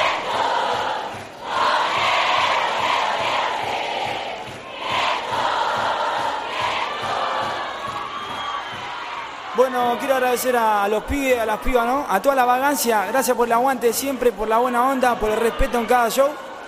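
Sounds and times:
crowd cheering and shouting at a live concert: 0.0s - 16.6s
speech: 9.7s - 16.5s.

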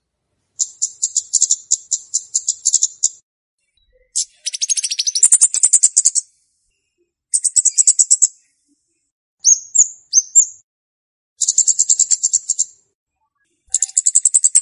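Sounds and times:
flowerpecker chirps used as a lure for wild birds: 0.6s - 3.2s, 3.8s - 6.4s, 7.3s - 8.4s, 9.4s - 10.6s, 11.4s - 12.8s, 13.7s - 14.6s.

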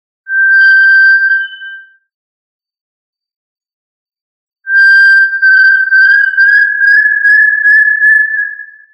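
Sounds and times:
tinamou whistled call: 0.3s - 1.9s, 4.7s - 8.9s.

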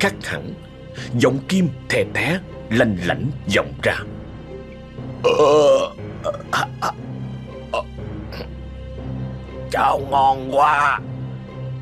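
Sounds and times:
speech: 0.0s - 4.2s, 5.2s - 7.1s, 9.7s - 11.1s
man burping loudly from deep in his throat: 5.2s - 7.0s, 7.7s - 8.5s.

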